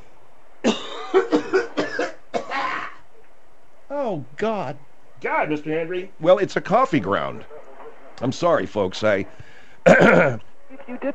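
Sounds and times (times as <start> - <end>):
several people coughing: 0.6 - 3.0, 9.8 - 10.4
speech: 1.1 - 1.4, 4.1 - 7.6, 8.2 - 11.1.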